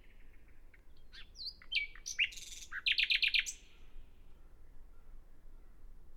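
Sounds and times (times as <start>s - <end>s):
common nightingale singing: 0.0s - 3.8s.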